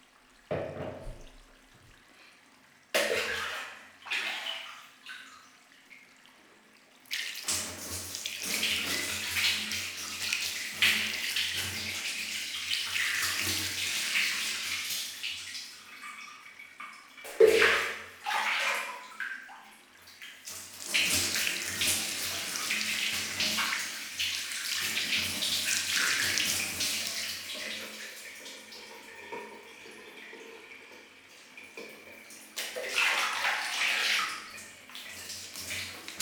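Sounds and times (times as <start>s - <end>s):
tap water running to rinse after washing at bath time: 0.0s - 6.4s, 7.0s - 36.2s.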